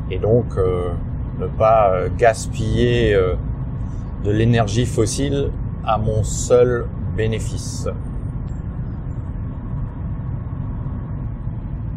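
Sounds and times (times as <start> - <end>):
moving car cabin engine and road drone: 0.0 - 11.9
speech: 0.1 - 3.5, 4.2 - 8.1.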